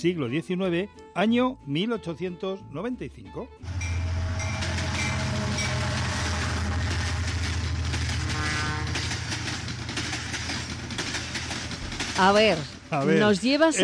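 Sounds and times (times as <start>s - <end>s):
speech: 0.0s - 3.9s, 12.2s - 13.8s
train wheels clattering over rails: 3.7s - 13.7s.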